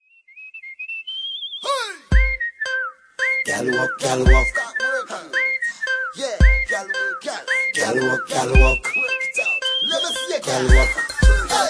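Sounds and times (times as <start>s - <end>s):
whistle: 0.0s - 11.6s
Trini soca riddim: 2.1s - 11.6s.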